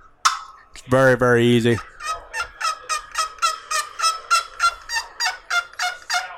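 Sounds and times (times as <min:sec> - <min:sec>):
speech: 0:00.9 - 0:01.9
slate turkey call clucks imitating a turkey: 0:01.8 - 0:06.3.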